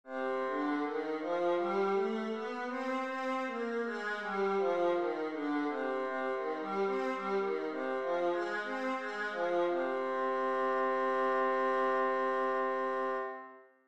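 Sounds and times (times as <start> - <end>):
viola playing C minor scales: 0.2 - 13.6.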